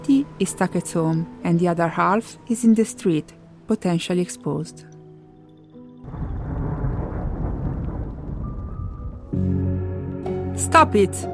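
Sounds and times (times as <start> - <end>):
speech: 0.1 - 4.9, 10.6 - 11.3
rumbling thunder: 6.0 - 9.5
rushing rain: 6.1 - 9.4.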